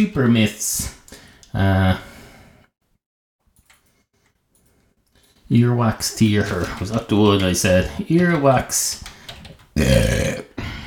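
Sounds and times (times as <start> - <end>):
speech: 0.0 - 0.9, 1.5 - 2.1, 5.5 - 9.2, 9.8 - 10.4
person belching: 9.8 - 10.6.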